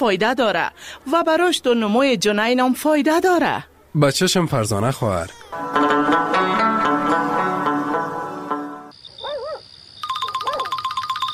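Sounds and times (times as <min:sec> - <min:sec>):
speech: 0:00.0 - 0:06.3
music: 0:05.5 - 0:08.9
phone ringing with an incoming call: 0:10.0 - 0:11.3.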